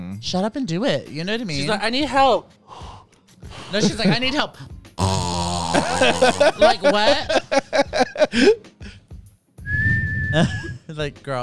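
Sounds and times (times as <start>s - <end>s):
speech: 0.2s - 2.9s, 3.7s - 4.8s, 5.7s - 9.0s, 10.3s - 11.4s
laughter: 3.6s - 4.4s, 5.7s - 8.6s, 10.4s - 10.8s
quick rising vocal bursts: 5.0s - 7.0s
high whistle: 9.6s - 10.8s.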